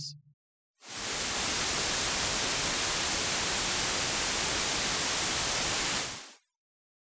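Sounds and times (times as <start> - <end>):
white noise: 0.8 - 6.4.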